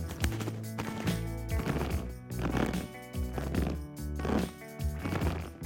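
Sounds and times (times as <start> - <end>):
pitched-down creaking footsteps crunching through snow: 0.1 - 5.5.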